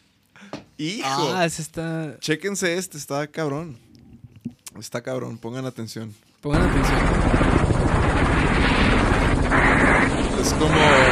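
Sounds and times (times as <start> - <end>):
speech: 0.4 - 3.9, 4.8 - 7.5, 10.4 - 11.1
helicopter rotor chop during a hunt: 6.6 - 11.1.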